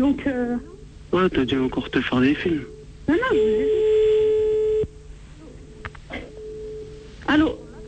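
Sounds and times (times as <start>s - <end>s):
speech: 0.0s - 4.0s
telephone call tone as a call is placed: 2.7s - 7.1s.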